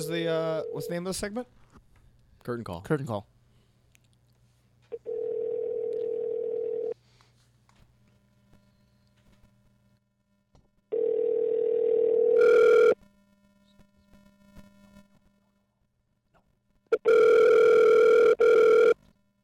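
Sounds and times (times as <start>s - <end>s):
outgoing phone call ringback tone: 0.0s - 1.0s, 5.0s - 7.0s, 10.9s - 13.0s, 17.0s - 19.0s
speech: 0.0s - 1.8s, 2.4s - 3.3s.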